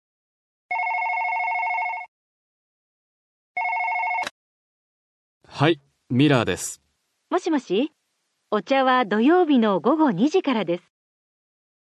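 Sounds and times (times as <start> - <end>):
telephone ringing with an electronic trill: 0.7 - 2.1, 3.6 - 4.3
speech: 5.5 - 10.9.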